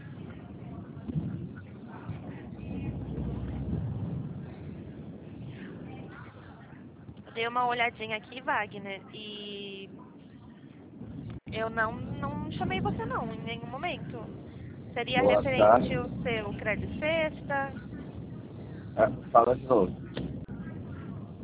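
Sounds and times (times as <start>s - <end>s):
engine rumble inside a moving bus: 1.2s - 5.8s, 11.3s - 21.2s
speech: 7.4s - 9.9s, 11.5s - 17.8s, 19.0s - 20.0s.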